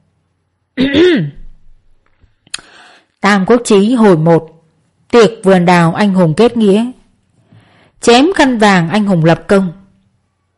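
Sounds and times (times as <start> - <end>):
man clearing his throat: 0.8 - 1.4
speech: 0.8 - 1.4, 3.2 - 7.0, 8.0 - 9.8.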